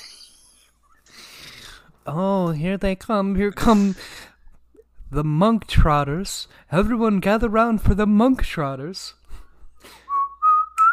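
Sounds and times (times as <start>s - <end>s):
speech: 2.0s - 4.2s, 5.1s - 9.2s
person whistling a tune: 9.9s - 10.9s.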